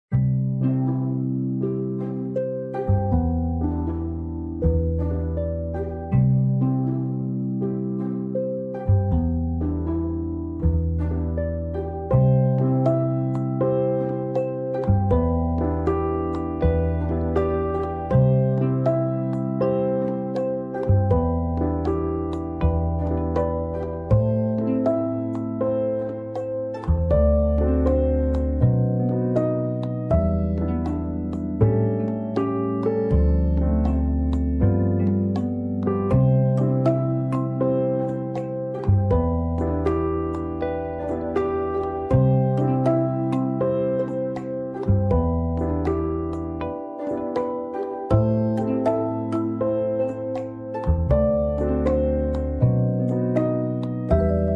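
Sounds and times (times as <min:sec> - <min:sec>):
music: 0:00.0 - 0:54.5.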